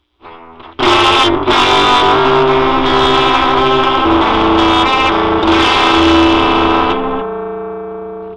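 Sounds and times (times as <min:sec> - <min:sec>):
synthesizer LFO modulation: 0:00.9 - 0:07.5.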